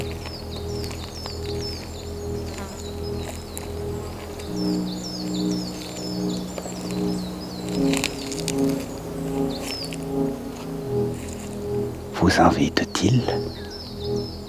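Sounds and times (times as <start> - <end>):
faint crackles: 0.0 - 14.1
birds chirping softly: 0.0 - 14.4
steady low tonal hum: 0.0 - 14.4
speech: 12.3 - 13.5.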